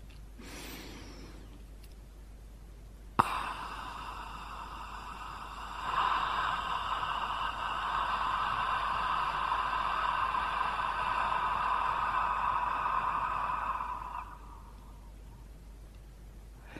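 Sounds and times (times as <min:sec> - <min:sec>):
long quiet exhaled breath shaped like an open ah vowel: 0:00.4 - 0:01.6, 0:03.2 - 0:15.2, 0:16.6 - 0:16.7.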